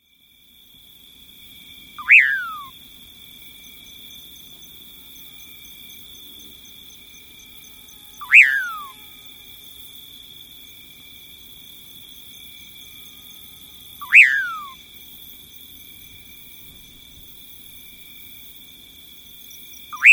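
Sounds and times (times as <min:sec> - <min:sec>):
Common Pauraque calling: 0:02.0 - 0:02.7, 0:08.2 - 0:09.0, 0:14.0 - 0:14.8, 0:20.0 - 0:20.1.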